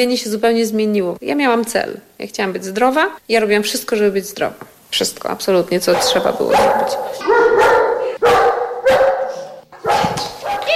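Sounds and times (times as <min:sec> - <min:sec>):
speech: 0:00.0 - 0:07.6
dog barking: 0:05.9 - 0:10.7.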